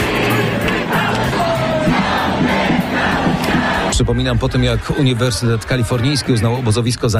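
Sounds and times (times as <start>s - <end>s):
crowd of protesters chanting slogans: 0.0s - 6.7s
speech: 4.0s - 7.1s.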